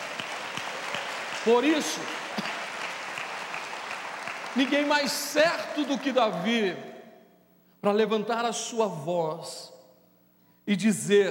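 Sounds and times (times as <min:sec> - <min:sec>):
congregation applauding loudly: 0:00.0 - 0:06.8
speech: 0:01.4 - 0:02.5, 0:04.6 - 0:06.9, 0:07.8 - 0:09.7, 0:10.7 - 0:11.2.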